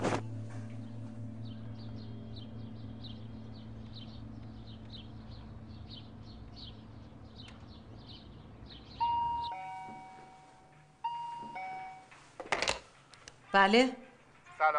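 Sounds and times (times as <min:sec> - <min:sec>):
faint chirping: 0:00.6 - 0:12.1
intercom doorbell ringing: 0:09.0 - 0:12.1
speech: 0:13.6 - 0:14.0, 0:14.6 - 0:14.7.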